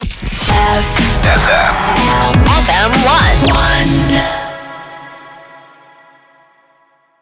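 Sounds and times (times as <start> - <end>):
rapid fire jingle music in C minor: 0.3 - 5.4.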